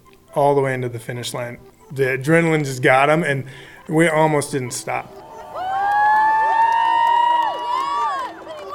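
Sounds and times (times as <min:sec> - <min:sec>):
speech: 0:00.4 - 0:05.2
crowd cheering and yelling on a dock: 0:05.1 - 0:08.7.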